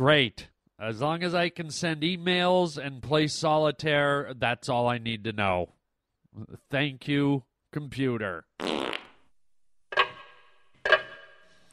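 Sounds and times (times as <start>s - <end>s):
speech: 0.0s - 5.8s, 6.4s - 9.0s
grandfather clock ticking: 9.9s - 11.7s.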